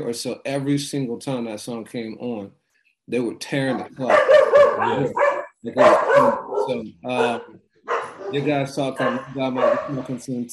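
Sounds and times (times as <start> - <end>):
speech: 0.0 - 7.6, 8.3 - 10.5
several dogs barking and yowling: 3.7 - 10.2.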